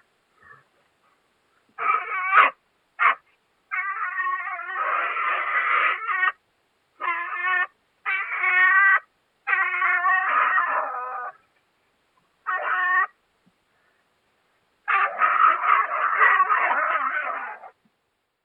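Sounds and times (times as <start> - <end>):
European pine marten yowling during the mating season: 1.8 - 6.4, 7.0 - 11.5, 12.4 - 13.2, 14.8 - 17.8.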